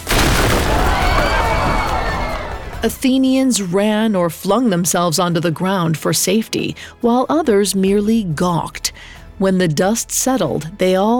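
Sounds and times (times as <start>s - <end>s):
explosion as a wall bursts into purple and orange flames: 0.0s - 2.8s
speech: 2.8s - 11.1s.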